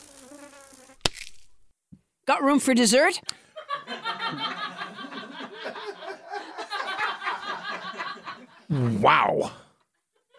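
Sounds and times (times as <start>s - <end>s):
mosquito whining with thin wavering buzz: 0.0s - 1.0s
speech: 2.3s - 3.4s, 8.7s - 9.6s
laughter: 3.6s - 10.3s.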